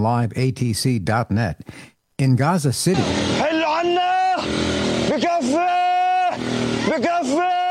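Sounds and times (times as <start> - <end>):
speech: 0.0 - 5.7, 6.4 - 7.6
loud rumble of car and motorbike engines in congested traffic on a coastal road: 3.0 - 3.6, 4.4 - 5.5, 6.4 - 7.1
car and motorbike horns blaring in long sustained blasts on a coastal road: 3.0 - 7.6.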